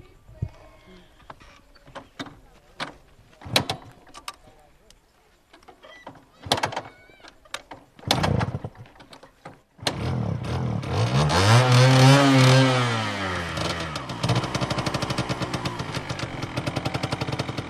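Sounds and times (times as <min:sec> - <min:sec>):
motorcycle engine starting and revving: 0:09.8 - 0:17.6.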